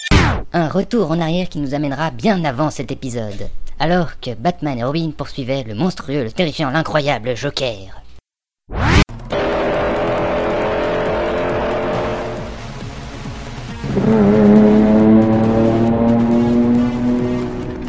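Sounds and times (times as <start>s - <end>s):
speech: 0.3s - 8.0s, 14.1s - 14.4s
car speeding in a chase: 9.1s - 17.8s.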